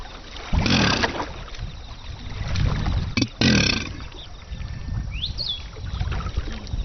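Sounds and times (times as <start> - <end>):
faint splashing: 0.0 - 6.8
male Chinese alligators bellowing in water at a breeding centre near Xuanzhong: 0.5 - 1.4, 3.2 - 4.2.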